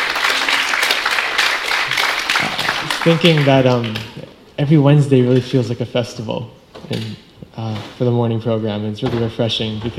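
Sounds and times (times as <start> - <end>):
applause of many hands clapping at a kirtan: 0.0 - 4.2
speech: 3.0 - 9.9.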